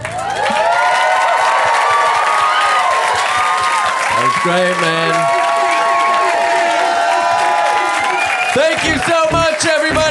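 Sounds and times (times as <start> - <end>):
audience cheering and whooping at the end of a live show: 0.0 - 10.0
speech: 4.4 - 5.4, 8.6 - 10.0.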